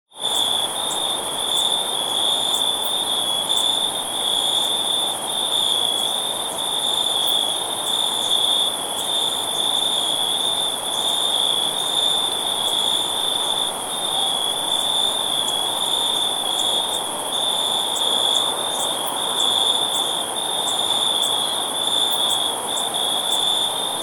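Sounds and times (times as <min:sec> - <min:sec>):
cricket chirping: 0:00.2 - 0:24.0.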